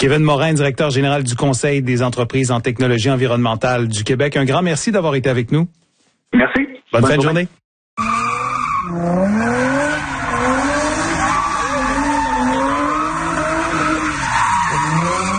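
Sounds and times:
speech: 0:00.0 - 0:08.2
car engines roaring during illegal street racing: 0:08.0 - 0:15.3
car tires squealing during illegal street racing in an industrial district: 0:08.0 - 0:15.3.

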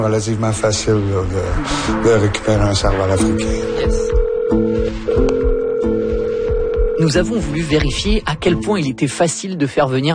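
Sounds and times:
speech: 0:00.0 - 0:05.5, 0:07.0 - 0:10.1
electronic telephone ringing tones on a call: 0:03.7 - 0:07.5.

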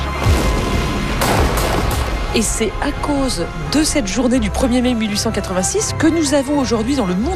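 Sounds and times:
gunfire volley by soldiers in a dramatized 1886 scene: 0:00.2 - 0:02.3
speech: 0:02.3 - 0:07.3.

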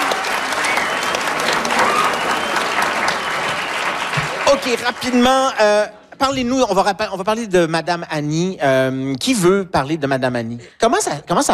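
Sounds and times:
room full of people applauding: 0:00.0 - 0:05.8
speech: 0:04.6 - 0:11.5.

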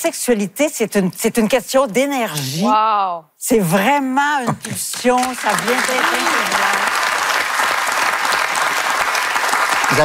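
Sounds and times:
speech: 0:00.0 - 0:06.9
audience applause: 0:04.9 - 0:10.0.

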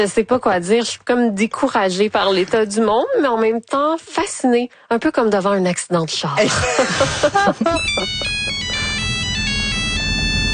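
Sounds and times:
speech: 0:00.0 - 0:08.6
laughter: 0:06.4 - 0:09.1
old basic cell phone ringtone with stepped electronic tones: 0:07.7 - 0:10.5.

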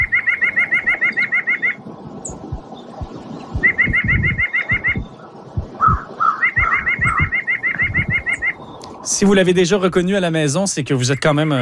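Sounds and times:
white-breasted nuthatch calling: 0:00.0 - 0:02.5, 0:03.3 - 0:08.9
thumps: 0:02.4 - 0:06.0
speech: 0:09.2 - 0:11.6.

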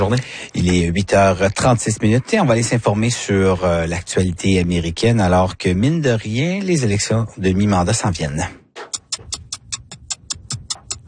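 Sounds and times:
speech: 0:00.0 - 0:08.6
clock ticking: 0:08.9 - 0:11.0.

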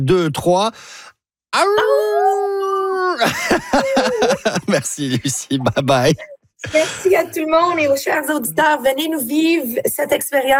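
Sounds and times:
speech: 0:00.0 - 0:02.6, 0:03.2 - 0:10.5
two people imitating a wolf howl: 0:01.6 - 0:03.3
laughter: 0:03.2 - 0:05.9, 0:06.6 - 0:07.5.

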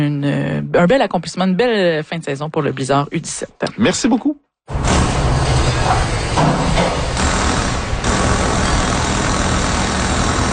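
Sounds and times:
speech: 0:00.0 - 0:05.1
engines running in a garage during winter tire installation: 0:04.7 - 0:10.5
mechanical din in a garage during winter tire installation: 0:04.7 - 0:10.5
sharp mechanical bursts in a garage during winter tire installation: 0:07.1 - 0:10.5.

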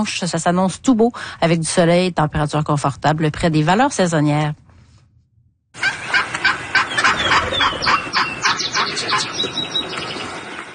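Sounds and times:
speech: 0:00.0 - 0:04.6
female wild turkey yelping: 0:05.8 - 0:09.4.

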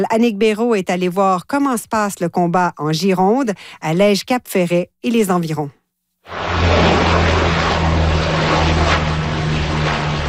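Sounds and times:
speech: 0:00.0 - 0:07.0
water-bomber propeller aircraft droning overhead: 0:06.3 - 0:10.2.

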